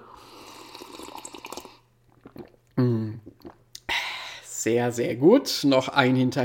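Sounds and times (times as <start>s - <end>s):
carbonated apple spritzer being drunk: 0.0s - 3.9s
soft gulp: 0.1s - 3.9s
speech: 2.8s - 3.3s, 4.6s - 6.4s.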